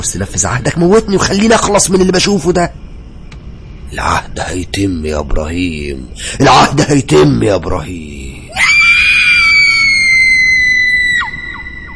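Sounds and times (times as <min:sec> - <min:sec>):
speech: 0:00.0 - 0:02.8, 0:04.0 - 0:08.3
child screaming: 0:08.5 - 0:11.9.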